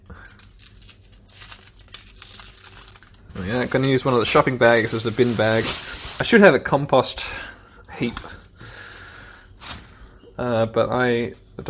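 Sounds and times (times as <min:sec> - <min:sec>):
papery skin being peeled off a red onion: 0:00.0 - 0:06.2
speech: 0:03.4 - 0:08.3, 0:10.4 - 0:11.6.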